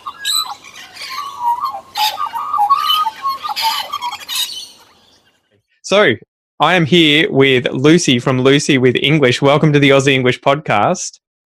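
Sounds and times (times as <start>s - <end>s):
bird chirping and squawking: 0.0s - 5.6s
speech: 5.9s - 11.2s.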